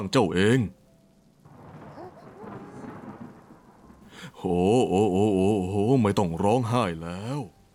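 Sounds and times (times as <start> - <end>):
speech: 0.0 - 0.8, 4.4 - 7.6
steady heavy rain hissing: 1.2 - 7.7
low rumble of thunder: 1.3 - 6.4.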